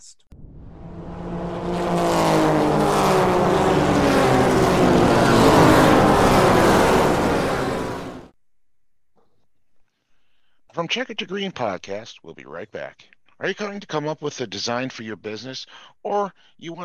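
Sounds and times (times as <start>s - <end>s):
race car engines accelerating and revving: 0.4s - 8.3s
speech: 10.9s - 16.8s.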